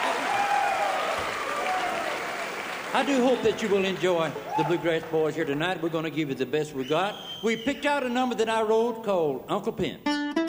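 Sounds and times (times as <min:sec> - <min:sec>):
audience applause at a live bluegrass band show: 0:00.0 - 0:06.0
speech: 0:03.0 - 0:10.1.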